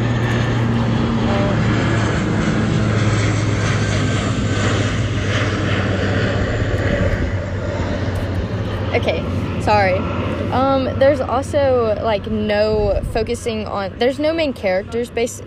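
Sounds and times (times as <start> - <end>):
airplane engine roar passing overhead: 0.0 - 15.4
speech: 9.7 - 15.4.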